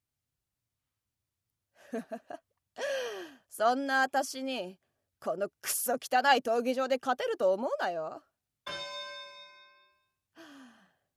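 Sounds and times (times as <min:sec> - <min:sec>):
speech: 0:01.9 - 0:02.5, 0:03.6 - 0:08.3
starting bell strike ringing: 0:08.7 - 0:10.0
short breathy vocal sigh with falling pitch: 0:10.4 - 0:11.1.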